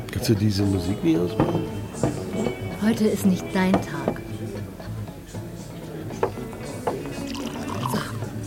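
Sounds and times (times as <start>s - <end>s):
speech: 0.2s - 4.2s
schnaps pouring into a glass for a toast: 7.0s - 8.3s.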